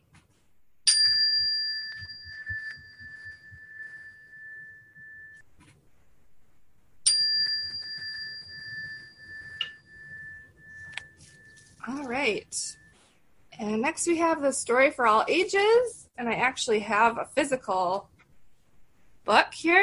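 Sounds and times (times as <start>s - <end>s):
meditation chime struck to start and end a silent meditation: 0.9s - 5.5s, 7.0s - 13.2s
speech: 12.0s - 12.8s, 13.6s - 18.1s, 19.3s - 19.8s.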